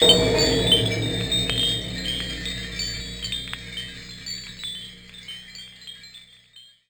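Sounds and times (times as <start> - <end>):
industrial impact: 0.0 - 5.2.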